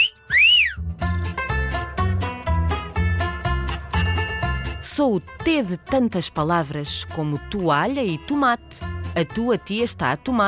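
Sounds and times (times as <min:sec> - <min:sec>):
person whistling: 0:00.0 - 0:00.9
bouncy rhythmic musical backing with a steady beat: 0:00.0 - 0:10.4
speech: 0:05.0 - 0:10.4.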